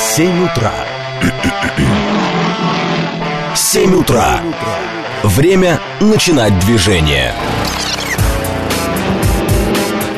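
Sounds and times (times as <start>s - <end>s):
speech: 0.2s - 1.8s, 3.6s - 7.9s
car engine running and revving: 1.7s - 3.6s, 6.5s - 10.1s.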